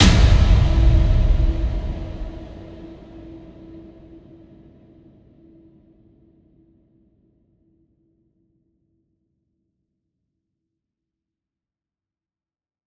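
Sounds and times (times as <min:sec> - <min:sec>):
big metal hit: 0:00.0 - 0:04.2.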